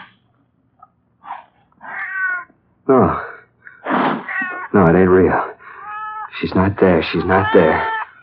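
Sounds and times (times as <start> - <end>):
cat yowling: 1.8 - 2.5, 4.2 - 4.8, 5.8 - 6.3, 7.1 - 8.1
speech: 2.9 - 3.2, 4.8 - 5.5, 6.4 - 7.9.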